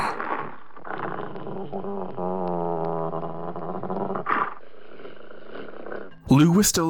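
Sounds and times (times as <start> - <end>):
female fox growling threateningly: 0.0 - 6.3.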